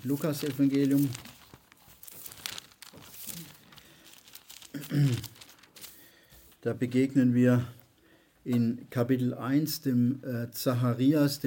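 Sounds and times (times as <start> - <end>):
speech: 0.0 - 1.3, 5.0 - 5.3, 6.6 - 7.8, 8.4 - 11.4
pages of a Bible flipping: 0.0 - 6.6.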